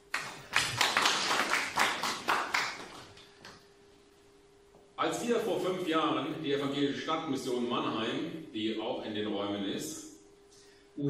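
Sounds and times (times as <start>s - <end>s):
audience applause: 0.0s - 3.2s
speech: 5.0s - 10.0s.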